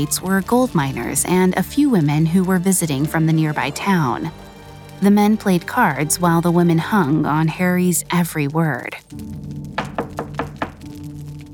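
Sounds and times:
speech: 0:00.0 - 0:09.8
knocking on a wooden door: 0:09.8 - 0:10.9.

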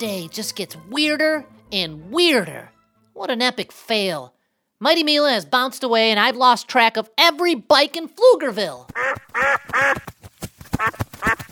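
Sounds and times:
speech: 0:00.0 - 0:10.2, 0:10.8 - 0:11.4
rustling: 0:08.9 - 0:11.5
duck quacking: 0:09.0 - 0:10.1, 0:10.8 - 0:11.5.

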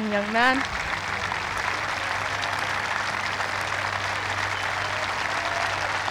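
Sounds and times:
large outdoor golf gallery applauding at the 18th green: 0:00.0 - 0:06.0
speech: 0:00.1 - 0:00.8.

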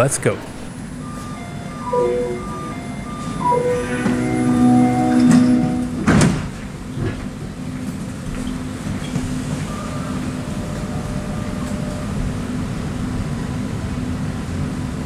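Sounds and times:
low hum and rumble of automated light metro train interior in Montreal: 0:00.0 - 0:15.0
automated light metro train door chime with short melodic warning tone: 0:00.7 - 0:06.2, 0:09.7 - 0:13.0.

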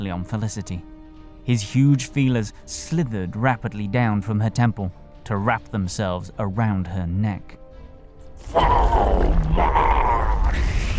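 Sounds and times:
speech: 0:00.0 - 0:07.6, 0:08.4 - 0:09.9
deep sustained monster roar with low growl and wavering howl: 0:08.4 - 0:10.9.

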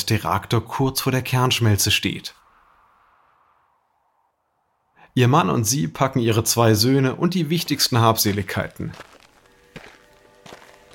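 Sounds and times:
speech: 0:00.0 - 0:02.4, 0:05.2 - 0:09.1
slow heavy footsteps trudging: 0:07.5 - 0:10.9.

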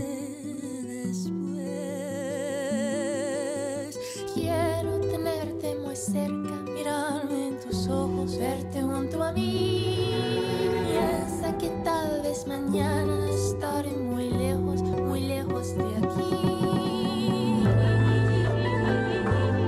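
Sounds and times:
woman singing a slow romantic bolero cover in Spanish: 0:00.0 - 0:19.6
steady mellow instrumental accompaniment: 0:04.3 - 0:19.6
speech: 0:06.0 - 0:06.6.

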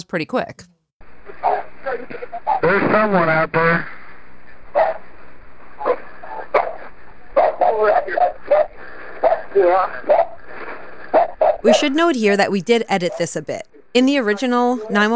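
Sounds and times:
speech: 0:00.1 - 0:00.7, 0:01.8 - 0:04.0, 0:07.8 - 0:10.4, 0:11.6 - 0:15.1
steady hiss: 0:01.0 - 0:15.1
dog barking over a muffled telephone line on a 911 call: 0:11.1 - 0:11.9.

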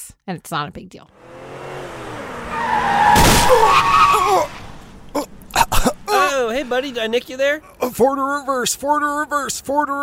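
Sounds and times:
speech: 0:00.3 - 0:01.2, 0:06.6 - 0:10.0
thudding impacts of car hitting a person: 0:01.2 - 0:06.9
skidding car tires screeching: 0:01.2 - 0:07.2.

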